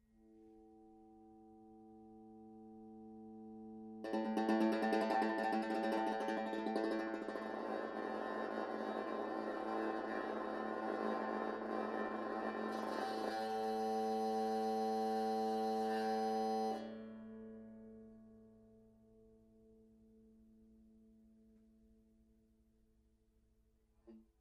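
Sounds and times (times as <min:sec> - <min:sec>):
banjo played with an e-bow and a pencil: 0:04.0 - 0:17.0.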